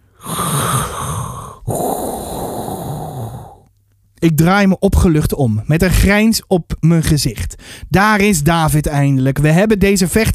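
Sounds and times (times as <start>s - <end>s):
mechanical respirator breathing through a hall: 0.0s - 3.7s
speech: 4.2s - 10.3s.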